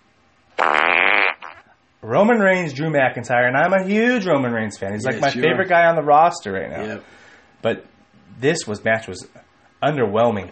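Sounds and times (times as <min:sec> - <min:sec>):
loud buzzy raspberry blown with the lips imitating a fart: 0:00.6 - 0:01.7
speech: 0:02.0 - 0:10.4.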